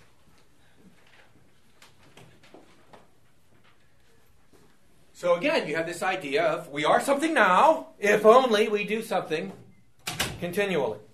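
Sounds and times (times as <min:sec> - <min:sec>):
low room noise: 0:00.0 - 0:11.1
speech: 0:05.2 - 0:09.6, 0:10.4 - 0:11.1
door being opened: 0:09.5 - 0:10.5.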